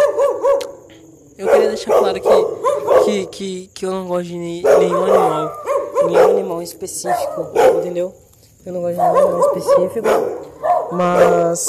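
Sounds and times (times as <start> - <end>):
dog barking loudly: 0.0 - 0.8, 1.4 - 3.3, 4.6 - 8.1, 8.9 - 11.6
speech: 1.7 - 11.6.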